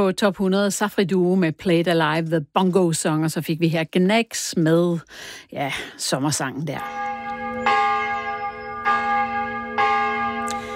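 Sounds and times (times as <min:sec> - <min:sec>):
speech: 0:00.0 - 0:07.2
church bell ringing: 0:06.7 - 0:10.7.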